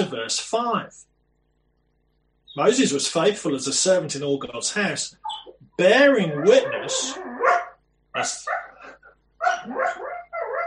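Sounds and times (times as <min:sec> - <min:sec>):
speech: 0:00.0 - 0:01.1, 0:02.6 - 0:07.3, 0:08.2 - 0:08.6
female dog barking and yipping: 0:06.2 - 0:10.6.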